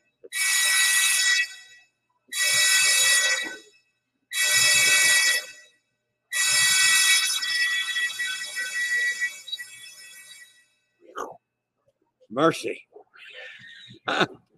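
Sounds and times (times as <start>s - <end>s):
electronic emergency alarm on a ship during a drill: 0.3s - 3.7s, 4.3s - 5.7s, 6.3s - 10.7s
speech: 12.4s - 13.0s, 14.1s - 14.4s.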